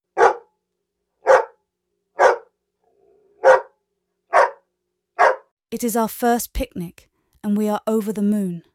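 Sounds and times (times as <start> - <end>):
dog barking: 0.1 - 0.6, 1.2 - 1.6, 2.2 - 2.6, 3.4 - 5.5
speech: 5.7 - 8.7.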